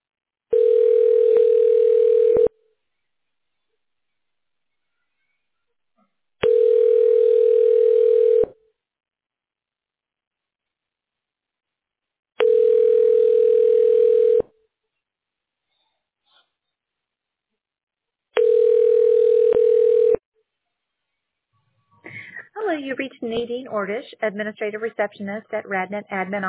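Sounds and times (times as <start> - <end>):
telephone ringback tone while an automated phone menu transfers a call: 0.5 - 2.5, 6.4 - 8.5, 12.4 - 14.4, 18.4 - 20.2
speech: 22.9 - 26.4.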